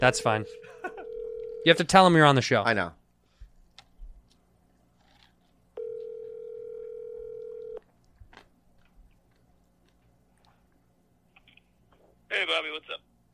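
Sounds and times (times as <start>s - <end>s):
speech: 0.0s - 0.7s, 1.6s - 3.0s
outgoing phone call ringing tone: 0.0s - 1.8s, 5.8s - 7.8s.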